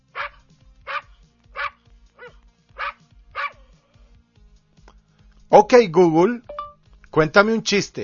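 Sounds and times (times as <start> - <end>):
Border Collie barking: 0.1 - 3.6
speech: 5.6 - 6.5, 7.2 - 8.0.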